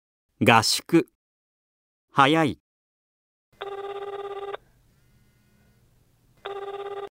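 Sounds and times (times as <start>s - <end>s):
speech: 0.4s - 1.1s, 2.2s - 2.6s
telephone ringing with a loud electronic trill: 3.6s - 4.6s, 6.4s - 7.1s
faint hiss: 4.6s - 6.5s.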